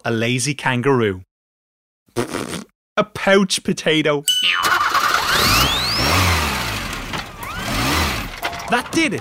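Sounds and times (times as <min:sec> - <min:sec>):
speech: 0:00.0 - 0:01.3, 0:02.2 - 0:05.5, 0:08.7 - 0:09.1
car engine starting and revving: 0:04.7 - 0:08.6.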